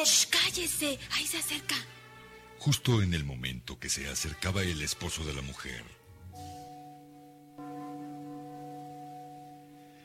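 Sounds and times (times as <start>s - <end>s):
speech: 0.0s - 2.0s, 2.6s - 6.5s
large bell tolling at midnight: 6.3s - 10.0s.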